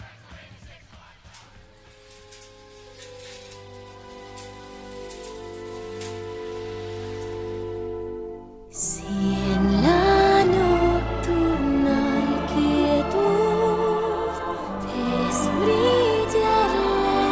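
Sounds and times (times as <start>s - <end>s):
sustained layered tones: 1.6s - 17.3s
new pop cover of a classic film melody: 4.1s - 17.3s.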